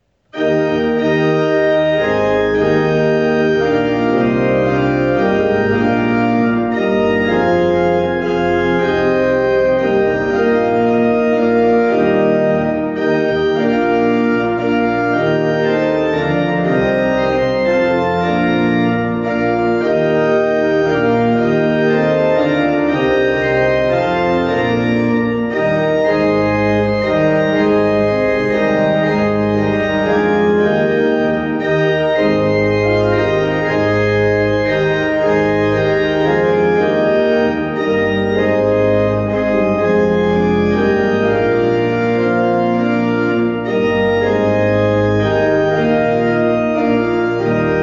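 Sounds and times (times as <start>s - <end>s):
organ playing: 0.2s - 47.8s.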